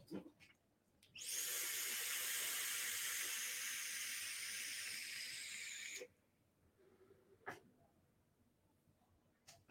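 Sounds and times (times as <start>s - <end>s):
vape drawn through an RDA with two coils at 60 watts, airflow open: 1.2s - 6.1s.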